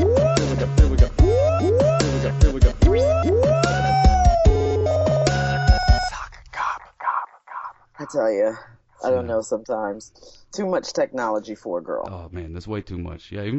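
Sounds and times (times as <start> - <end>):
pulsing electronic beat: 0.0 - 6.3
siren sound effect rising whoops: 2.9 - 6.1
speech: 8.1 - 13.5.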